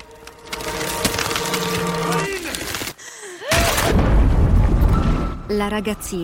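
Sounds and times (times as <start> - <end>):
ice cracking and splintering with crunching snaps: 0.0 - 4.0
heavy crash of breaking ice as a girl falls in: 0.3 - 4.5
speech: 5.6 - 6.2.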